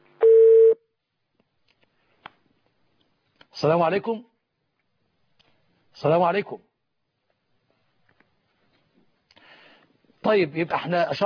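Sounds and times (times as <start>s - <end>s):
telephone line tone as a caller is connected: 0.2s - 0.8s
speech: 3.6s - 4.3s, 6.0s - 6.7s, 10.3s - 11.2s.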